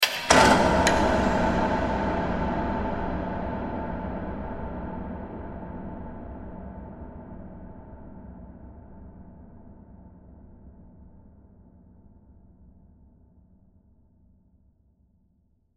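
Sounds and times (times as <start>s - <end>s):
dungeon cell door processed with reverb: 0.0s - 4.2s.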